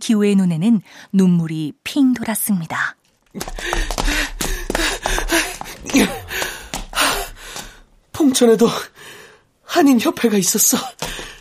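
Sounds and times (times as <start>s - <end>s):
speech: 0.0s - 4.2s, 5.8s - 6.2s, 8.2s - 8.9s, 9.7s - 11.3s
heavy rapid panting: 3.4s - 8.0s.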